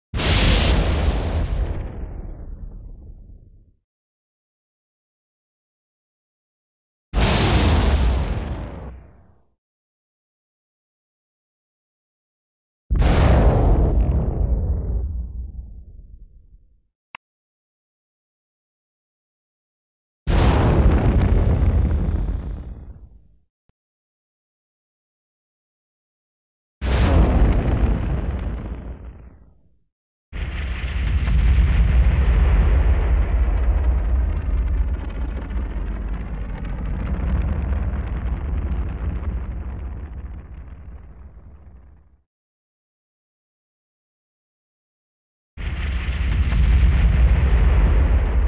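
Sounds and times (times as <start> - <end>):
bomb explosion: 0.2 - 3.7, 7.2 - 9.3, 12.9 - 16.6, 20.3 - 23.2, 26.8 - 29.6, 30.4 - 42.2, 45.6 - 48.4.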